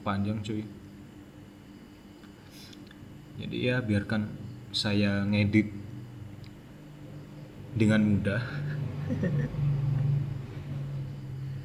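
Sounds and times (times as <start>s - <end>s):
speech: 0.0s - 0.8s, 3.4s - 5.8s, 7.8s - 9.7s
motorcycle engine droning: 7.5s - 11.6s
laughter: 8.5s - 9.6s.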